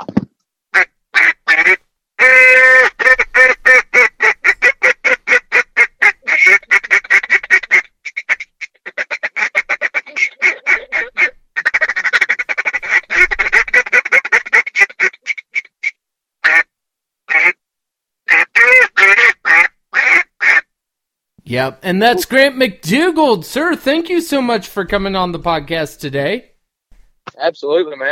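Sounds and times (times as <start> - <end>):
duck call blown by a teenager in rapid rhythmic bursts of quacking notes: 0.7 - 16.7, 17.3 - 17.6, 18.3 - 20.7
speech: 21.5 - 26.5, 27.5 - 28.1.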